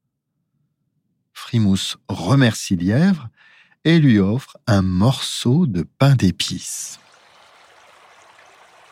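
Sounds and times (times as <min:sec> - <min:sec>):
speech: 0:01.5 - 0:07.0
river water flowing steadily: 0:07.0 - 0:08.8.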